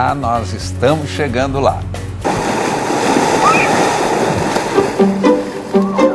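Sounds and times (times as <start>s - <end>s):
speech: 0.0s - 2.5s
water lapping against a shore of colourful pebbles on an island beach in Sweden: 2.3s - 6.0s.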